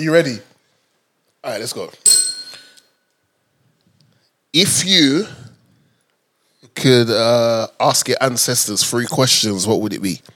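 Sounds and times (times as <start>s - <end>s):
speech: 0.0s - 0.5s, 1.4s - 2.1s, 4.5s - 5.4s, 6.7s - 10.3s
desk bell ding: 2.1s - 2.8s.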